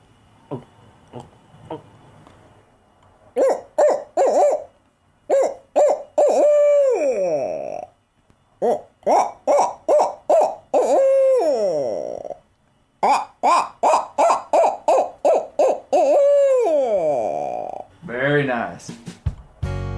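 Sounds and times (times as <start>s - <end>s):
man's voice imitating owl hoots: 0.4s - 2.0s, 3.4s - 8.0s, 8.6s - 18.0s
man gulping air: 0.5s - 2.0s.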